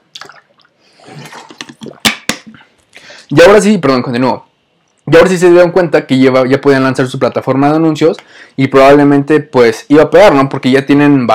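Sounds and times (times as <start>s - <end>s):
person gulping water: 0.0s - 2.8s
water sloshing: 0.1s - 2.3s
speech: 3.3s - 4.5s, 5.1s - 11.3s.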